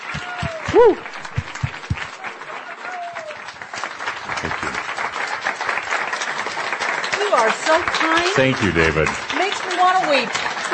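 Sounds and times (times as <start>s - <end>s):
heavy low thumps: 0.0s - 2.1s
audience clapping welcoming a guest onto a stage: 0.0s - 10.7s
speech: 0.8s - 1.2s, 7.4s - 10.5s.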